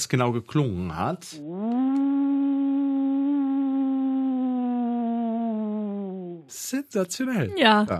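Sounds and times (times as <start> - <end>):
speech: 0.0 - 2.0, 6.7 - 7.9
man imitating wolf howl over telephone: 1.5 - 6.5.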